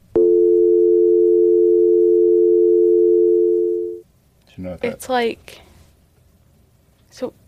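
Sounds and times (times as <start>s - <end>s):
landline telephone dial tone: 0.2s - 4.0s
speech: 4.6s - 5.7s, 7.1s - 7.4s.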